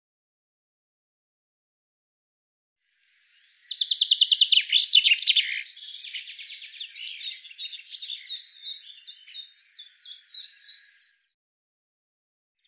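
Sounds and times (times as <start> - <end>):
common chaffinch song: 2.8 - 11.4.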